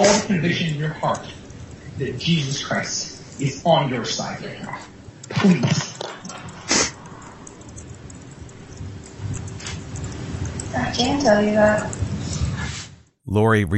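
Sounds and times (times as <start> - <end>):
speech: 0.0 - 1.4, 2.0 - 5.9, 11.0 - 12.0, 13.3 - 13.7
soft hiss: 0.0 - 13.7
person sniffling while crying: 6.7 - 7.0.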